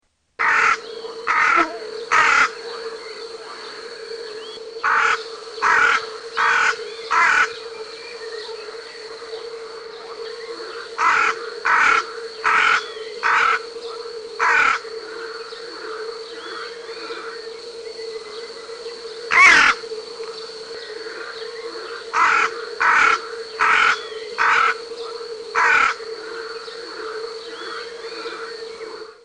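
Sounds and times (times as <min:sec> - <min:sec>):
hooded crow cawing: 0:00.4 - 0:02.6, 0:04.8 - 0:07.5, 0:11.0 - 0:13.6, 0:14.4 - 0:14.8, 0:19.3 - 0:19.8, 0:22.2 - 0:24.8, 0:25.6 - 0:26.0.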